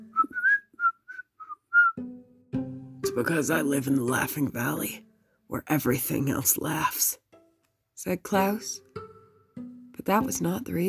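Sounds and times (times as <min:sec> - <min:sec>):
person whistling a cheerful tune: 0:00.0 - 0:02.1
speech: 0:03.2 - 0:07.2, 0:08.0 - 0:08.8, 0:10.1 - 0:10.8.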